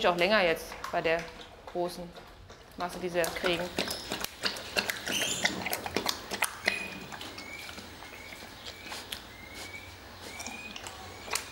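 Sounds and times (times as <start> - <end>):
speech: 0.0 - 3.9
bear lapping up soup with its tongue: 0.6 - 11.5
faint bird chirps: 6.6 - 11.5.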